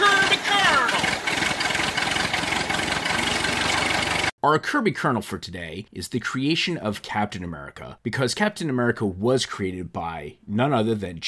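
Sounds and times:
tractor engine idling: 0.0 - 4.3
speech: 4.4 - 11.2.

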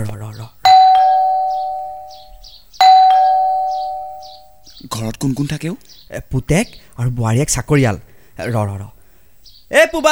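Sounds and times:
doorbell ding-dong chime: 0.7 - 4.4
speech: 5.2 - 9.0, 9.7 - 10.0.

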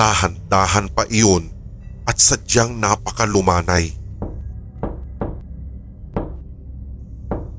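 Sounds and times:
speech: 0.0 - 4.0
low steady rumble: 0.0 - 7.5
fist knocking on a wooden door: 4.2 - 5.4, 6.2 - 6.4, 7.3 - 7.5.

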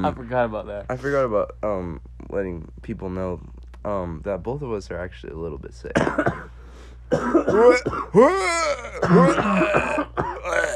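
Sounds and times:
speech: 0.0 - 10.3
person coughing from laughing: 5.9 - 10.7
throat clearing: 7.1 - 10.7.

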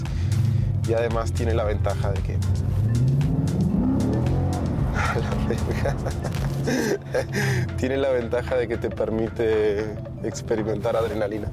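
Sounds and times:
car engine revving and accelerating: 0.0 - 8.4
speech: 0.9 - 3.1, 5.2 - 11.5
laughter: 5.0 - 7.7.

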